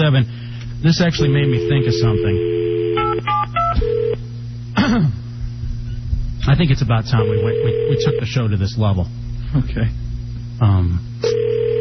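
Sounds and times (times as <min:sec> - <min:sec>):
speech: 0:00.0 - 0:02.6, 0:04.8 - 0:05.2, 0:06.4 - 0:10.0, 0:10.6 - 0:11.4
low hum on a phone line: 0:00.0 - 0:11.7
telephone line ringing tone on an outgoing call: 0:01.2 - 0:04.2, 0:07.2 - 0:08.3, 0:11.2 - 0:11.7.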